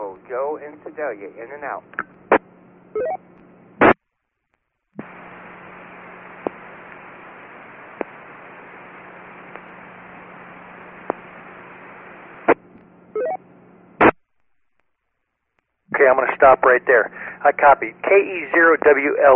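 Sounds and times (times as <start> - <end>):
radio repeater static hiss and low hum: 0.0 - 2.5, 3.7 - 4.0, 5.0 - 12.8, 15.9 - 19.3
speech: 0.3 - 2.0, 16.4 - 19.3
short radio repeater beeping tones: 3.0 - 3.2.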